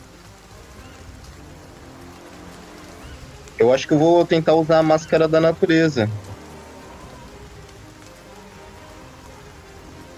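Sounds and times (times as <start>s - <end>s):
heavy rain pouring on a surface: 0.0s - 10.1s
speech: 3.6s - 6.3s.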